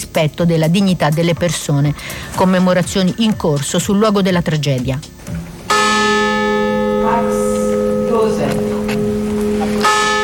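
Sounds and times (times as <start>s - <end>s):
faint voices murmuring: 0.0s - 10.2s
low hum: 0.0s - 10.2s
speech: 0.2s - 5.4s
large memorial bell tolling at a commemoration at the site of a tragedy: 5.2s - 10.2s.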